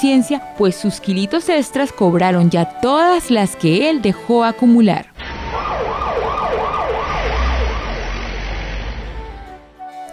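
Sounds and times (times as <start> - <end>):
speech: 0.0 - 5.1
ambulance siren wailing: 5.0 - 9.8
low rumble of traffic: 5.1 - 9.6.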